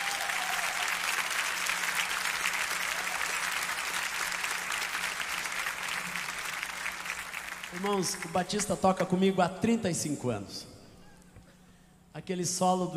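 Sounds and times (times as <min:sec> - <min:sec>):
church congregation applauding: 0:00.0 - 0:09.0
speech: 0:07.7 - 0:10.7, 0:12.2 - 0:12.9.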